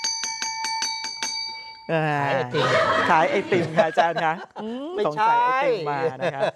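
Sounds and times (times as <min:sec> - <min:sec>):
small bell ringing: 0:00.0 - 0:02.2
speech: 0:01.9 - 0:06.5
laughter: 0:02.4 - 0:06.5.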